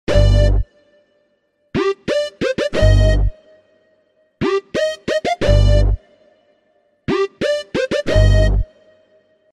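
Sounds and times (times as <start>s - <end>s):
phone ringtone with beats tone: 0.1s - 0.7s, 1.8s - 3.4s, 4.4s - 6.0s, 7.1s - 8.7s.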